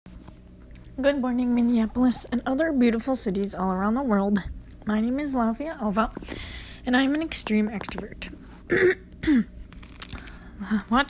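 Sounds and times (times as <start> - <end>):
speech: 1.0 - 9.6, 10.6 - 11.0
gruff throat clearing: 8.7 - 9.6.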